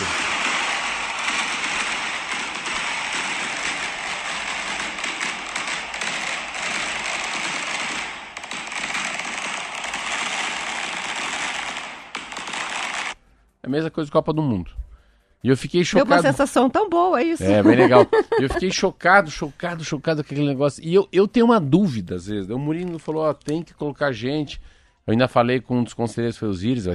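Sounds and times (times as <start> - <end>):
fireworks and firecrackers crackling: 0.0 - 13.2
speech: 13.7 - 14.8, 15.4 - 26.9
laughter: 16.0 - 16.4, 17.4 - 18.8.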